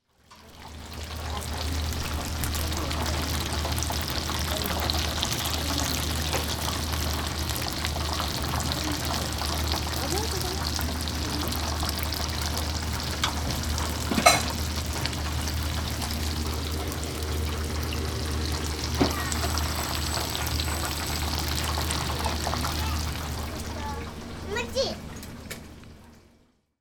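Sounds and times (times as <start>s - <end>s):
tempura frying in oil: 0.0s - 26.7s.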